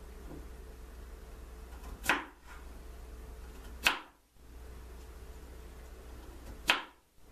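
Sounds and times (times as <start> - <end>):
quiet hiss: 0.0 - 7.3
knife dicing potatoes for lemon pepper fried potatoes: 1.7 - 2.7, 3.5 - 4.2, 6.2 - 7.0.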